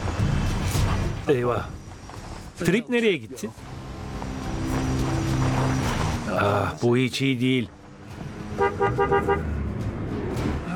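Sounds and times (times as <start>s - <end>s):
faint outdoor background: 0.0s - 10.7s
speech: 1.3s - 1.8s, 2.6s - 3.7s, 6.4s - 9.6s
car horn toots: 8.5s - 9.5s.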